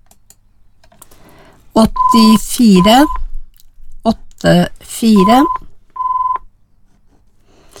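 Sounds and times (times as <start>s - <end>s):
faint low noise: 0.0s - 7.7s
speech: 1.8s - 3.2s, 4.0s - 5.6s
short steady electronic telephone tone: 1.9s - 2.4s, 5.2s - 6.5s.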